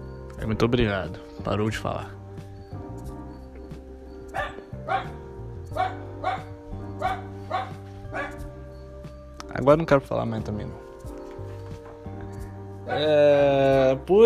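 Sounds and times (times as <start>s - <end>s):
speech: 0.4s - 2.2s, 4.9s - 7.2s, 9.6s - 10.8s, 12.9s - 14.2s
dog barking: 4.3s - 8.6s.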